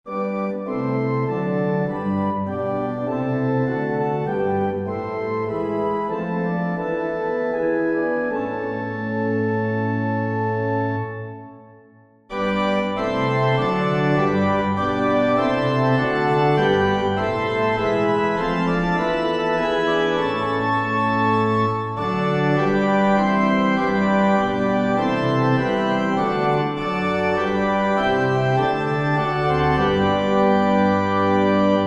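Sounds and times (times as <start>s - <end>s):
organ playing a hymn: 0.1s - 31.8s.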